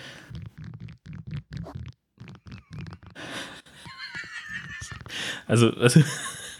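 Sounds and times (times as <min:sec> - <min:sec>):
bendable rod crackling and creaking as it is flexed: 0:00.0 - 0:05.2
laughter: 0:03.2 - 0:06.5
speech: 0:05.5 - 0:06.3.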